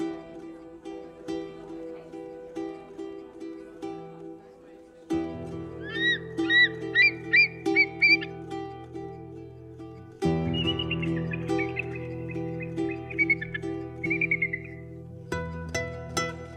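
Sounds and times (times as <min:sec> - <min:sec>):
kites calling in the Feldberg lake district: 0:00.0 - 0:09.3, 0:10.1 - 0:15.3
steady droning musical background: 0:00.0 - 0:16.5
eagles calling in the Feldberg lake district: 0:05.7 - 0:08.4, 0:10.4 - 0:15.0.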